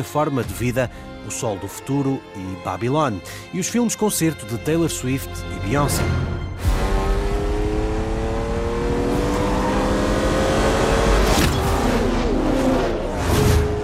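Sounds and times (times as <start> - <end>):
speech: 0.0 - 6.4
Ferrari racing car engine revving: 6.6 - 13.8.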